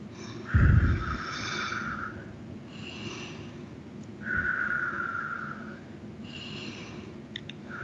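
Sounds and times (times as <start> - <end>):
slow breathing in and out during a guided meditation: 0.0 - 7.8.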